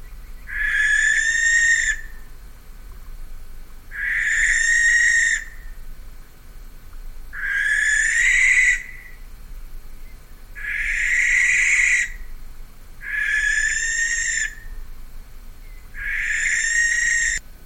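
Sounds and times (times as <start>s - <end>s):
barn owl hissing screeches: 0.5s - 2.2s, 3.9s - 5.6s, 7.4s - 9.2s, 10.6s - 12.2s, 13.0s - 14.7s, 16.0s - 17.4s.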